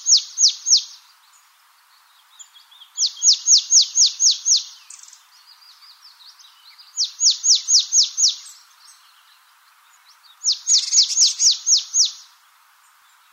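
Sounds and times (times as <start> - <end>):
soft bird twittering: 0.0 - 13.3
marsh tit calling: 2.4 - 9.4, 10.4 - 12.3.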